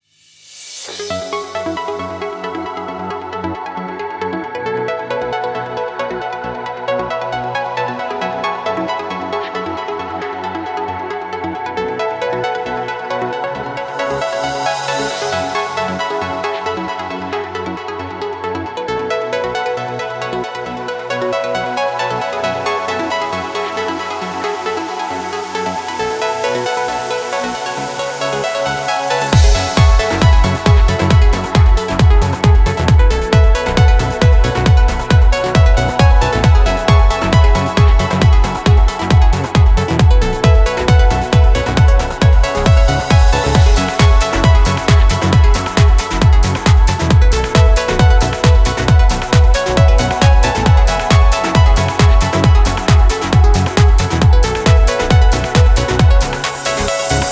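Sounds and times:
135 BPM complete music mix in F sharp minor: 0:00.4 - 0:57.2.

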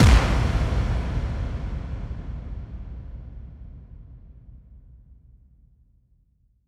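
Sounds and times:
bass drum kick with reverb effect: 0:00.0 - 0:04.7.

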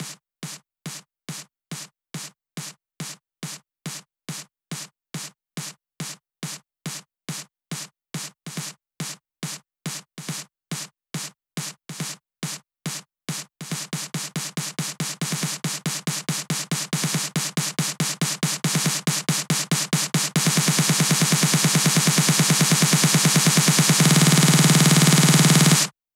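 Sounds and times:
snare drum fill at 140 BPM: 0:13.3 - 0:25.9.

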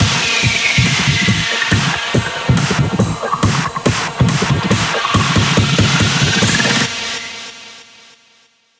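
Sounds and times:
hands up and trance fills: 0:00.0 - 0:07.2.

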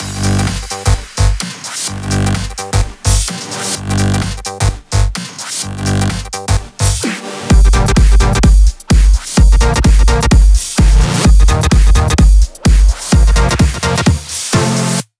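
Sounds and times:
128 BPM drum machine mix: 0:00.0 - 0:15.1.

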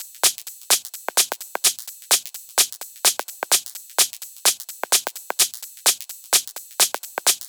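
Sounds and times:
drum kit at 128 BPM: 0:00.0 - 0:07.4.

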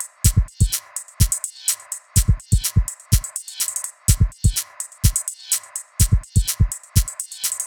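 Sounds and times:
drum kit at 125 BPM: 0:00.0 - 0:07.6.

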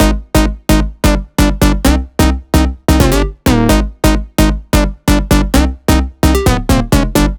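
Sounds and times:
130 BPM melody: 0:01.5 - 0:07.3.

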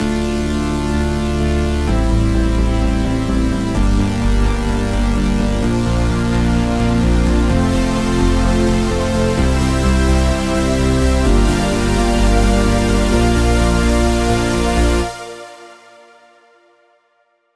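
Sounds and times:
dub melody: 0:00.0 - 0:15.9.

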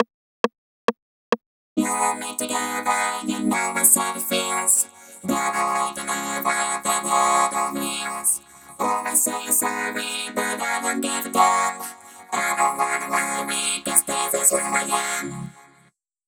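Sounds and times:
chorus vocoder effect: 0:01.8 - 0:15.8.

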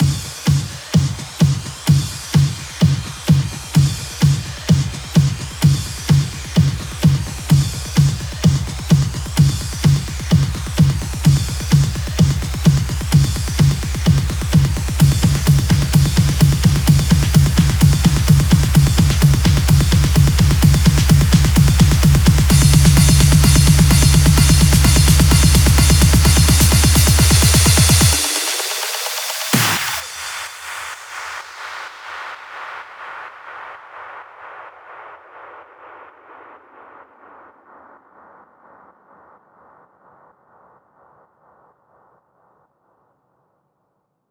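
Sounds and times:
128 BPM house electro fills: 0:00.0 - 0:40.3.

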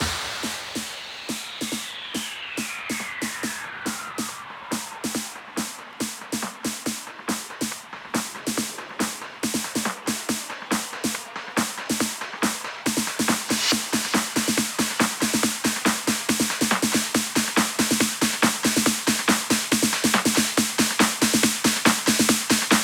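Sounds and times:
hands up and trance drum fills: 0:00.0 - 0:22.8
hand claps at 140 BPM: 0:05.1 - 0:22.8.

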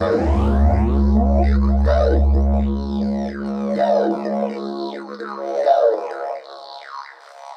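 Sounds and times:
tonal sound effect in C sharp: 0:00.0 - 0:05.8.

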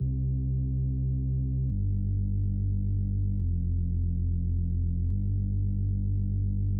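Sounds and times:
sub bass: 0:00.0 - 0:06.7.

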